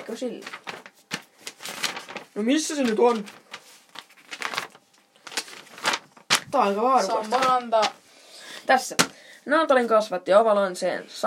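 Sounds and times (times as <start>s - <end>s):
paper rustling while searching for notes: 0.0s - 8.0s
speech: 0.1s - 0.6s, 2.4s - 3.4s, 6.5s - 8.0s, 8.7s - 11.2s.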